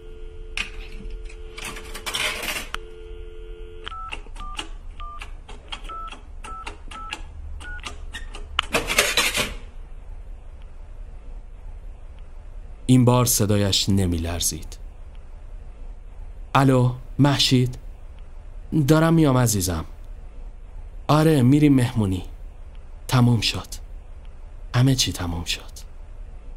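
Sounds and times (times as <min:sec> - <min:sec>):
steady payphone dial tone: 0:00.0 - 0:04.2
coin clattering into a payphone at a roadside telephone kiosk in snow: 0:01.6 - 0:02.7, 0:08.8 - 0:09.6
speech: 0:12.9 - 0:14.8, 0:16.6 - 0:17.8, 0:18.7 - 0:19.9, 0:21.1 - 0:22.3, 0:23.1 - 0:23.8, 0:24.7 - 0:25.9.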